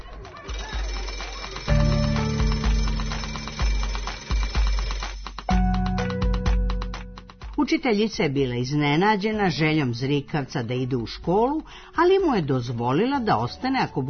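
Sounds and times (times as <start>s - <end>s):
loud electric school bell ringing for start of class: 0.4s - 7.0s
speech: 7.7s - 14.0s.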